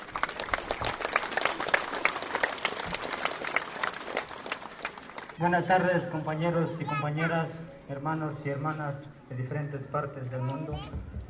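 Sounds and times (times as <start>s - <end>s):
crowd applauding: 0.0s - 5.4s
speech: 5.4s - 11.2s.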